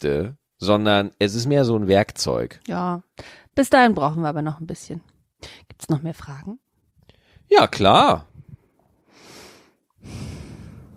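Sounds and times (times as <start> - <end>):
speech: 0.0 - 6.6, 7.5 - 8.3
person breathing heavily: 9.0 - 10.9.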